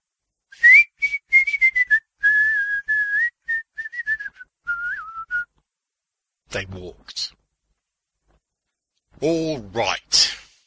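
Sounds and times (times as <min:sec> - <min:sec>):
person whistling a circus-style calliope tune: 0:00.5 - 0:05.6
speech: 0:06.5 - 0:07.4, 0:09.2 - 0:10.3.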